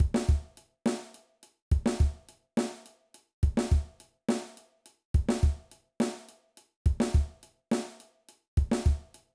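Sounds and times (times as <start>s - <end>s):
drum beat groove: 0.0s - 0.5s, 1.7s - 2.2s, 3.4s - 3.9s, 5.2s - 5.6s, 6.9s - 7.3s, 8.6s - 9.0s.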